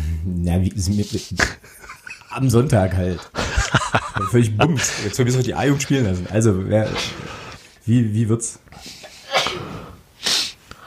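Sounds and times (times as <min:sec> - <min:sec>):
speech: 0:00.2 - 0:09.0
laughter: 0:01.4 - 0:06.6
loud sneeze: 0:09.2 - 0:10.6.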